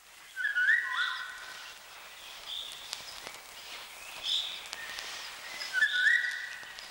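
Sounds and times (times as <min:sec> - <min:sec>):
Eurasian golden oriole song: 0:00.3 - 0:02.8, 0:03.9 - 0:06.8.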